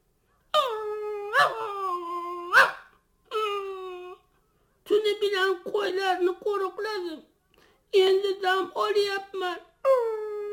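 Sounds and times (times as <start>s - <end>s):
puppy whimpering: 0.5s - 4.2s
puppy whining and howling: 0.5s - 4.3s, 9.8s - 10.5s
speech: 5.2s - 7.3s, 7.9s - 10.0s.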